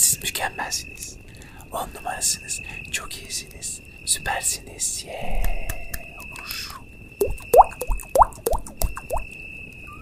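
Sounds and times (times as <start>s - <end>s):
steady high-pitched insect-like drone: 0.0s - 10.0s
speech: 0.4s - 6.6s
water dripping in a forest: 7.2s - 9.3s.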